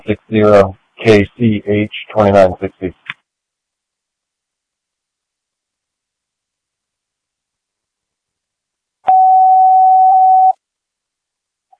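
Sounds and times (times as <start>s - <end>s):
speech: 0.1s - 3.0s
fire department dispatch test tone for a medical call: 9.1s - 10.6s.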